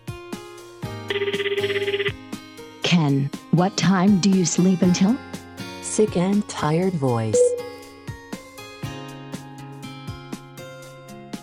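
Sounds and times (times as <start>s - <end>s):
rapid warbling electronic telephone ring: 1.1s - 2.2s
speech: 1.2s - 1.9s, 2.9s - 5.3s, 6.0s - 7.5s.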